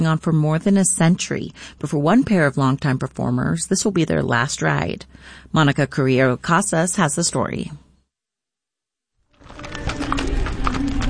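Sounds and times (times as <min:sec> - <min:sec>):
speech: 0:00.0 - 0:07.8
horse trotting, hooves clip-clopping: 0:09.3 - 0:11.0.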